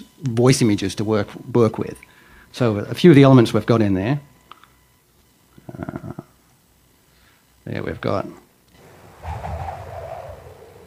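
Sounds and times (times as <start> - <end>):
speech: 0.2 - 4.3, 7.7 - 8.4
low gusty rumble: 8.8 - 10.8
wind whistling through wires: 8.8 - 10.8.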